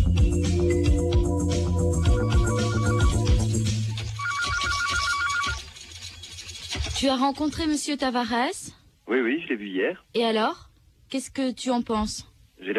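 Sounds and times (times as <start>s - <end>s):
busy continuous music-like backdrop: 0.0s - 5.0s
telephone ringing with repeating electronic trill for a call from Brazil: 2.0s - 6.5s
speech: 7.0s - 12.7s.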